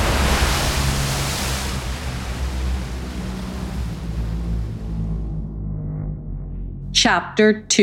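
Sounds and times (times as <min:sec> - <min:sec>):
huge ocean wave crashing: 0:00.0 - 0:05.4
speech: 0:07.1 - 0:07.8.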